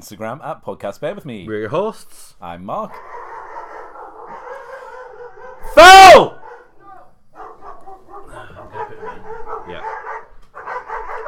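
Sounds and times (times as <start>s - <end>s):
speech: 0.0s - 3.2s, 5.8s - 6.4s
dog barking: 2.9s - 11.2s.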